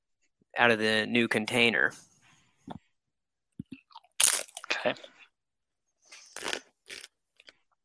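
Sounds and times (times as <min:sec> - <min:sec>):
speech: 0:00.6 - 0:02.1, 0:04.8 - 0:05.1
tortilla chip with mild salsa crunching while chewed: 0:04.2 - 0:04.6, 0:06.3 - 0:07.2.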